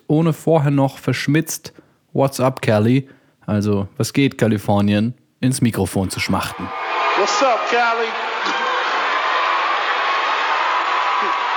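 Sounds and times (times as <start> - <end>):
speech: 0.1 - 8.6
large audience at a music awards ceremony on the US West Coast whistling and booing: 6.7 - 11.5.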